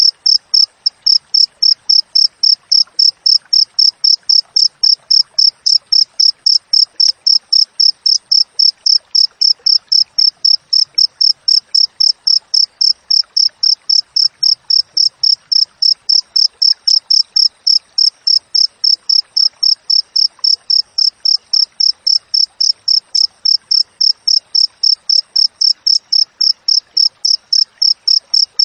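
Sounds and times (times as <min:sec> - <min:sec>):
wild cricket chirping: 0:00.0 - 0:28.6.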